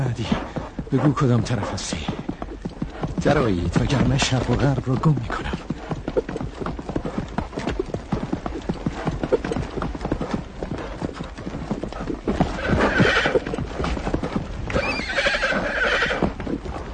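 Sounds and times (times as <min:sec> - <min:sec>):
speech: 0:00.0 - 0:02.2, 0:03.2 - 0:05.6
horse galloping: 0:00.0 - 0:16.9
horse whinnying: 0:12.3 - 0:14.0, 0:14.7 - 0:16.6.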